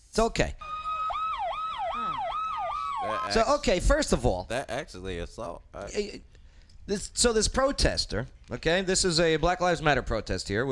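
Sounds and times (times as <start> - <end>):
speech: 0.2 - 0.6, 3.0 - 10.6
police car siren yelping, played from a video: 0.6 - 3.6.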